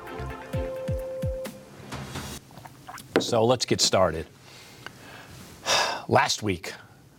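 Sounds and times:
quick gulps of a hot drink: 0:02.5 - 0:03.4
slurping hot coffee from a mug: 0:02.6 - 0:03.1
speech: 0:03.2 - 0:04.4, 0:06.1 - 0:06.8
soft exhale: 0:04.4 - 0:06.0.

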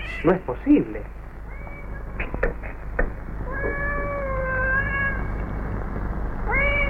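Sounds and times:
cats meowing and caterwauling: 0:00.0 - 0:00.4, 0:01.4 - 0:02.8, 0:03.4 - 0:05.5, 0:06.4 - 0:06.8
steady low rumble: 0:00.0 - 0:06.8
speech: 0:00.2 - 0:01.2.

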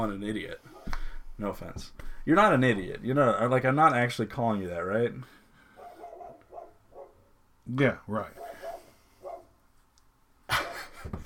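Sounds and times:
speech: 0:00.0 - 0:00.7, 0:01.4 - 0:05.4, 0:07.7 - 0:08.5
dogs barking outside: 0:05.8 - 0:07.3, 0:08.3 - 0:09.6.

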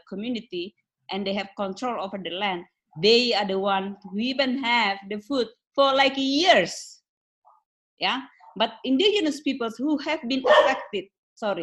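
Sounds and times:
speech: 0:00.1 - 0:07.0, 0:08.0 - 0:11.6
dog barking sharp yaps: 0:10.4 - 0:11.0.

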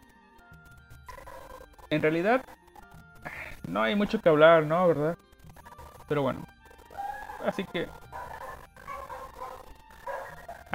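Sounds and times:
speech: 0:01.9 - 0:02.6, 0:03.7 - 0:05.2, 0:06.1 - 0:06.5, 0:07.4 - 0:08.0
several dogs barking and yapping: 0:06.7 - 0:10.7.

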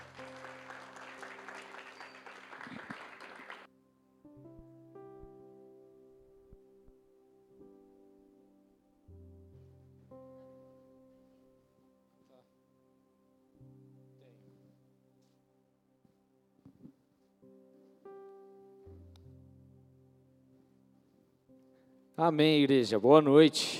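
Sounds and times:
church audience clapping: 0:00.0 - 0:03.7
speech: 0:22.2 - 0:23.7.

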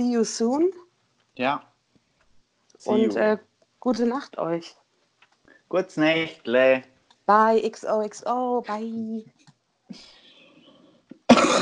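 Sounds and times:
speech: 0:00.0 - 0:00.8, 0:01.4 - 0:01.7, 0:02.8 - 0:04.8, 0:05.7 - 0:10.2
person coughing: 0:02.9 - 0:03.2, 0:11.3 - 0:11.6.

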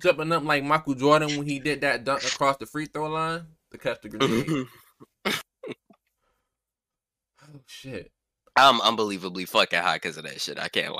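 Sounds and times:
speech: 0:00.0 - 0:05.8, 0:07.5 - 0:10.9
person coughing: 0:04.2 - 0:05.8.

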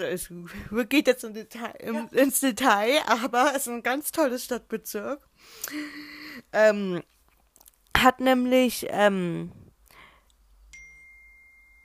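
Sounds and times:
speech: 0:00.0 - 0:07.1, 0:08.0 - 0:09.6
mobile phone notification chime: 0:10.7 - 0:11.8.

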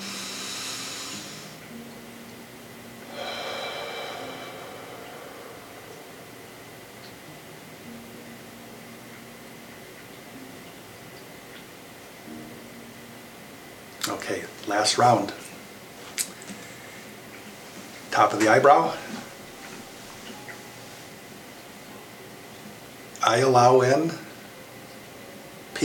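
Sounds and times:
soft breathing during a guided energy-balancing tapping exercise: 0:00.0 - 0:01.6, 0:03.1 - 0:07.3, 0:16.5 - 0:18.1
low steady hum: 0:00.0 - 0:25.8
speech: 0:14.2 - 0:15.4, 0:18.2 - 0:19.0, 0:23.3 - 0:24.2.

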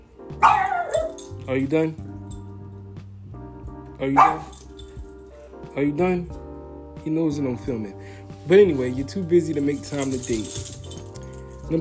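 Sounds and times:
dog barking uncontrollably: 0:00.4 - 0:01.2, 0:04.2 - 0:04.6
speech: 0:01.5 - 0:02.1, 0:04.0 - 0:04.6, 0:05.8 - 0:06.4, 0:07.0 - 0:10.8, 0:11.7 - 0:11.8.

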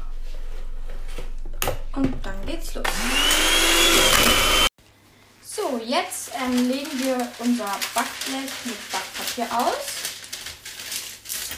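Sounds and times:
speech: 0:02.0 - 0:04.4, 0:05.8 - 0:10.0
electric hand mixer whirring while stirring dough of eggs and milk: 0:02.8 - 0:04.7.

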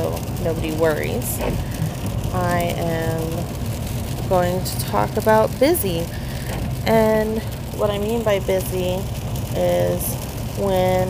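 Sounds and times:
constant low road rumble: 0:00.0 - 0:11.0
rain pattering on a moving car: 0:00.0 - 0:11.0
speech: 0:00.4 - 0:03.6, 0:04.3 - 0:06.2, 0:06.8 - 0:11.0.

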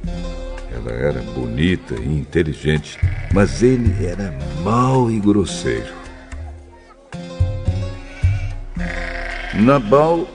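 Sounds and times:
speech: 0:00.8 - 0:06.0, 0:09.6 - 0:10.3
animal noise: 0:01.5 - 0:07.1, 0:07.7 - 0:10.3
small flock of sheep bleating: 0:02.8 - 0:04.4, 0:05.6 - 0:07.0, 0:07.8 - 0:10.3.

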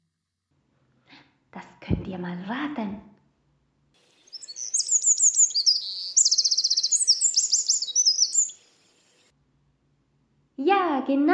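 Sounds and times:
speech: 0:01.6 - 0:03.1, 0:11.1 - 0:11.3
songbird singing high chirps and trills: 0:04.0 - 0:09.3.

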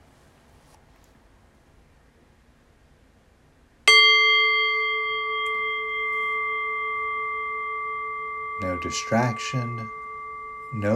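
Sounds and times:
meditation bell ringing: 0:03.9 - 0:10.9
speech: 0:08.8 - 0:10.0, 0:10.7 - 0:10.9.

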